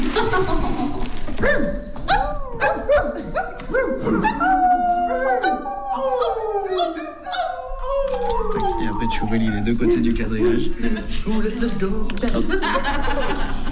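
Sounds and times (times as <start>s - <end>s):
laughter: 0.1s - 1.2s, 8.1s - 13.7s
speech: 0.2s - 1.6s
people howling like a pack of dogs: 2.0s - 10.9s.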